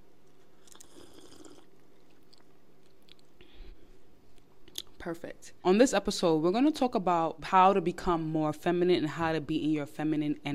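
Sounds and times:
person sipping an energy drink: 0.6 - 1.7
person gulping an energy drink: 0.6 - 2.5
speech: 5.0 - 10.5.

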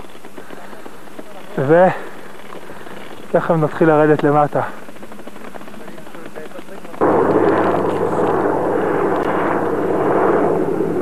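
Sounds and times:
speech: 1.6 - 2.1, 3.3 - 4.8
helicopter engine and rotor drone flying overhead: 2.3 - 11.0.

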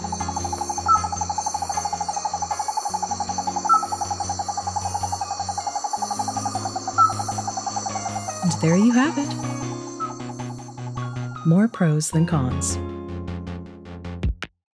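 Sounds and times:
Wallace's flying frog calling in a pulsing trill: 0.0 - 11.8
speech: 8.6 - 9.7, 11.4 - 13.0.

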